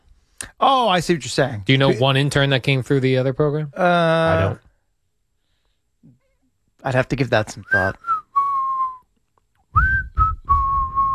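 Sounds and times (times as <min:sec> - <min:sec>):
speech: 0:00.6 - 0:04.6, 0:06.8 - 0:08.1
person whistling a short tune: 0:07.7 - 0:09.1, 0:09.7 - 0:11.1.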